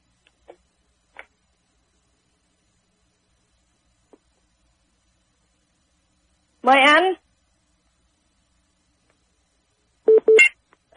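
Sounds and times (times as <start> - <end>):
speech: 6.6 - 7.2
telephone ringing tone beeps: 10.1 - 10.5.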